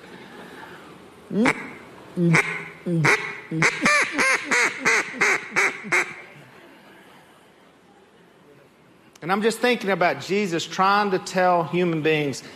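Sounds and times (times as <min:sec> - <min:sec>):
speech: 0:01.3 - 0:04.6, 0:09.3 - 0:12.5
person imitating a duck with loud nasal quacking: 0:01.3 - 0:06.2.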